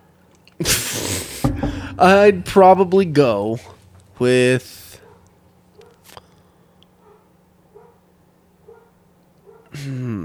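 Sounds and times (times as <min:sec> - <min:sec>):
speech: 0:00.6 - 0:00.9, 0:02.0 - 0:04.9
dogs barking: 0:04.9 - 0:06.1, 0:07.0 - 0:09.8.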